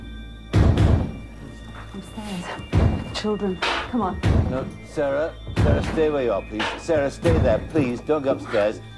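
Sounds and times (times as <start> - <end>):
speech: 2.0 - 8.9
child banging on metal pipes: 2.7 - 4.8, 5.4 - 7.8.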